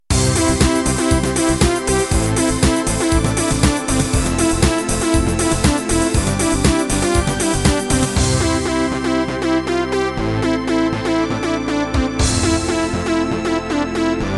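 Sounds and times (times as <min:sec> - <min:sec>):
techno music ending: 0:00.1 - 0:14.3.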